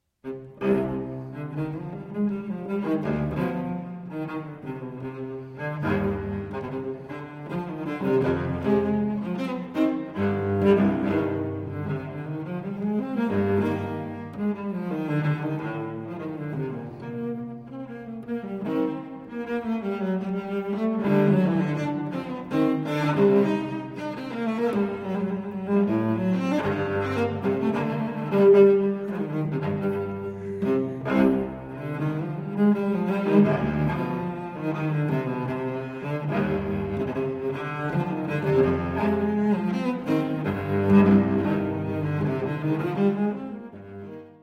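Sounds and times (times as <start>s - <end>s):
unaccompanied cello piece in C minor: 0.0s - 44.4s.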